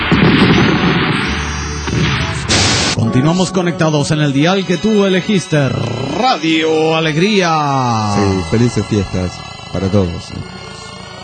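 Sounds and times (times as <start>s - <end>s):
firecrackers set off indoors in a living room during a Christmas gathering: 0.0s - 3.0s
speech: 3.1s - 11.2s.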